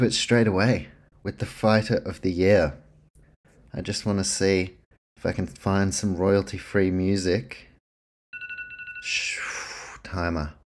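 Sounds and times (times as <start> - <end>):
speech: 0.0 - 2.8, 3.7 - 7.7, 9.0 - 10.6
phone timer alarm beeping: 8.3 - 9.3.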